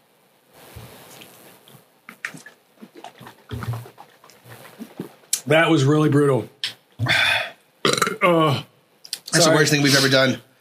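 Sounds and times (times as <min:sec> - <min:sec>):
guttural sound: 0:02.1 - 0:05.3, 0:07.0 - 0:08.7
speech: 0:05.5 - 0:06.6, 0:09.4 - 0:10.5
person burping: 0:07.0 - 0:08.8.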